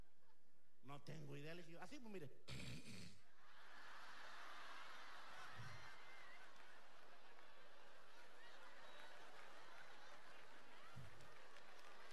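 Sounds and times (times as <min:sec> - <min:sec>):
speech: 0:00.9 - 0:03.3
audience applauding after a joke: 0:03.6 - 0:12.1.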